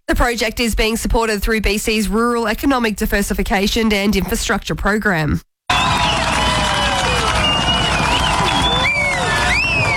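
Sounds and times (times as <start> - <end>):
speech: 0.1 - 5.5
crowd cheering at a FIFA World Cup watch party in a lakeside park: 5.7 - 9.9
whistle-like tones: 5.7 - 9.9.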